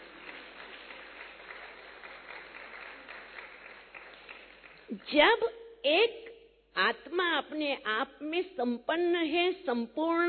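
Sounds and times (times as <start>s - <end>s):
audience clapping: 0.0s - 5.1s
speech: 4.9s - 10.2s.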